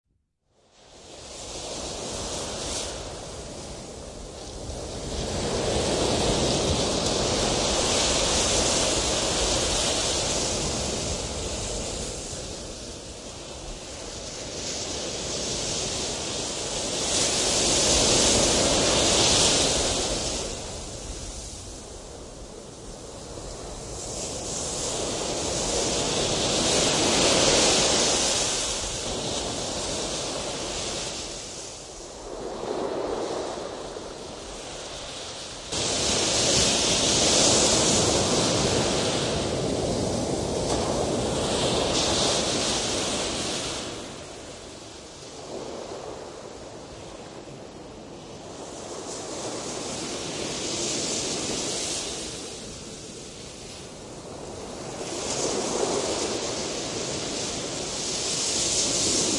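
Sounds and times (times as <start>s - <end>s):
ocean surf: 0.8s - 59.3s.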